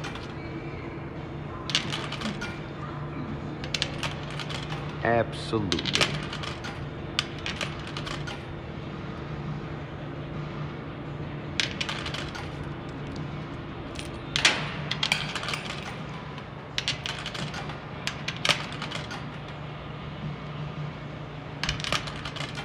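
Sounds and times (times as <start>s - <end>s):
coins dropping and rattling into a machine: 0.0s - 0.5s, 1.6s - 2.7s, 3.6s - 5.1s, 5.7s - 8.5s, 11.6s - 13.3s, 13.9s - 19.6s, 21.6s - 22.6s
steady low machine hum: 0.0s - 22.6s
speech: 5.0s - 6.4s.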